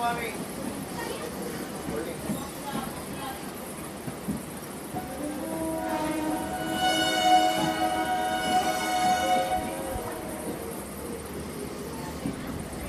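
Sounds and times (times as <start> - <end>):
railroad low rumble and rattle: 0.0 - 12.8
sustained tonal squeal: 5.0 - 11.0.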